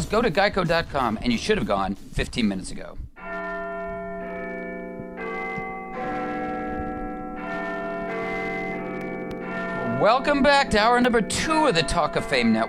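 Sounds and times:
speech: 0.1 - 3.1, 10.0 - 12.6
large tower clock bell chiming deep resonant strikes: 3.2 - 12.6.

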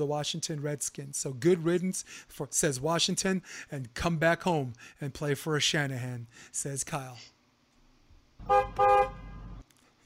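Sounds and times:
speech: 0.0 - 7.4, 8.4 - 9.1
car horn honking with brassy blasts: 8.4 - 9.6.

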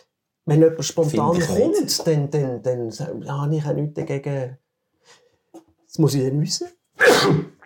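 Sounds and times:
speech: 0.5 - 5.2, 5.9 - 7.5
faint trailing breath: 4.9 - 5.6
sneeze: 7.0 - 7.6.

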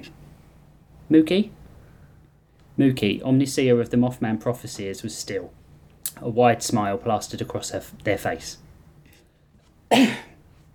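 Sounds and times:
speech: 1.1 - 1.6, 2.8 - 8.6, 9.9 - 10.3
sharp cough: 9.9 - 10.4.

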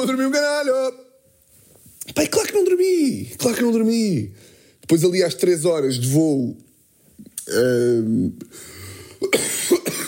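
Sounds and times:
speech: 0.0 - 1.1, 2.1 - 6.6, 7.5 - 9.7
raspy throat clearing: 9.2 - 10.0
sharp harsh coughs: 9.2 - 10.0.

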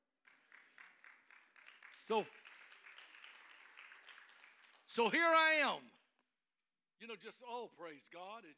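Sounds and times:
congregation clapping in a steady quick rhythm: 0.0 - 6.2
speech: 2.0 - 2.5, 5.0 - 6.0, 7.0 - 8.5.

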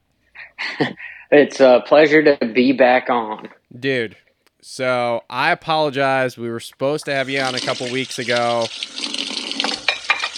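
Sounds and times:
speech: 0.8 - 9.0
running water splashing from a tap: 7.0 - 10.3.

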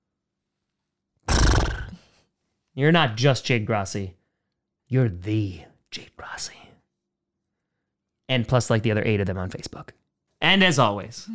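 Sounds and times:
horse neighing sound effect: 1.3 - 2.0
speech: 2.8 - 4.2, 4.9 - 6.7, 8.3 - 11.3.

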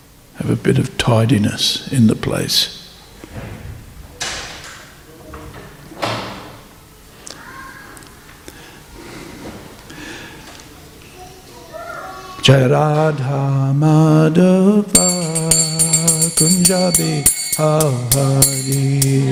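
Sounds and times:
room noise: 0.0 - 19.2
speech: 0.4 - 2.8, 12.5 - 15.0, 16.7 - 19.2
doors shutting with a sliding thud: 3.2 - 6.7.

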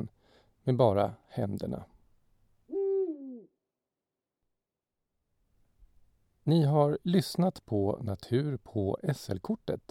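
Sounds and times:
speech: 0.7 - 1.9, 6.4 - 9.8
owl hooting: 2.7 - 3.6.

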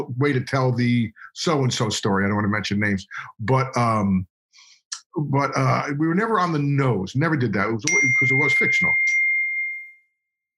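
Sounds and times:
speech: 0.0 - 4.3, 5.2 - 9.2
text message notification ding: 7.9 - 10.1.

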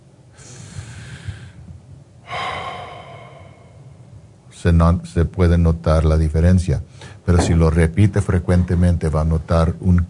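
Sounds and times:
person breathing in and out as a breathing exercise for calm: 0.3 - 4.2
speech: 4.6 - 10.0.

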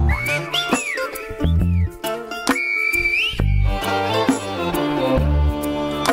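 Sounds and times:
Silbo whistled language whistles echoing between mountains: 0.0 - 3.8
dense musical backdrop with steady low beats: 0.0 - 6.1.

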